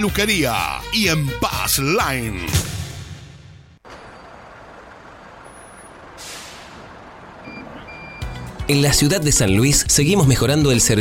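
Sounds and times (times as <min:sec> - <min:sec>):
speech: 0:00.0 - 0:02.8, 0:08.7 - 0:11.0
large new city bus engine idling: 0:03.8 - 0:10.8
city bus air brakes hissing: 0:05.5 - 0:07.0
faint high beeps: 0:07.4 - 0:08.3.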